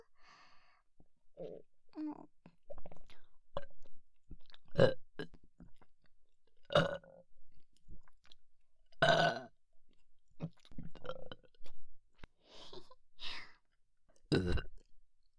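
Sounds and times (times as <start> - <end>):
speech: 1.4 - 2.3, 4.8 - 5.0
breathy burps: 6.7 - 7.1, 9.0 - 9.5, 14.3 - 14.8.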